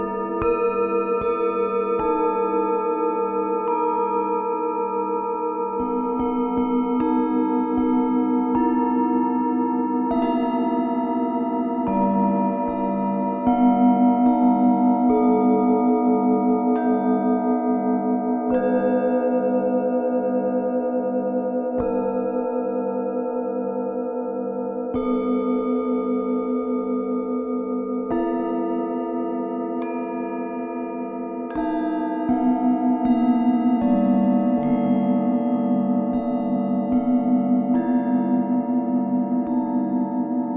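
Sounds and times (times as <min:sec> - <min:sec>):
singing bowls ringing: 0:00.0 - 0:40.5.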